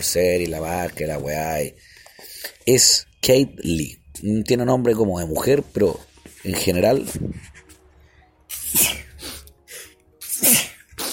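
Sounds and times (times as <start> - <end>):
speech: 0.0 - 7.6
quiet breathing: 1.8 - 2.6
person with a slight cold sneezing: 8.5 - 11.1.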